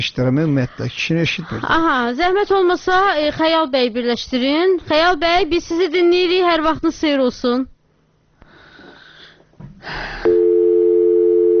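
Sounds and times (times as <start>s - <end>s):
speech: 0.0s - 7.7s, 9.8s - 10.3s
telephone busy signal on a call not connected: 10.3s - 11.5s.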